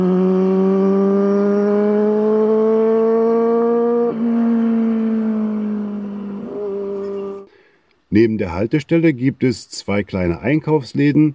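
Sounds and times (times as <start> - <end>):
fast motorcycle roaring through a village: 0.0 - 7.5
speech: 8.1 - 11.3.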